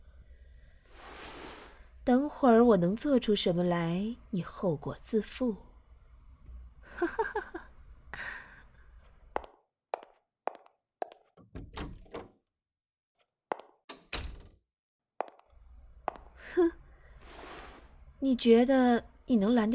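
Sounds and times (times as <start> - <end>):
speech: 2.1 - 5.7, 18.3 - 19.7
drawer scraping as it is pulled open: 11.4 - 12.3
wooden knocks and thunks of a drawer being handled: 11.4 - 12.3.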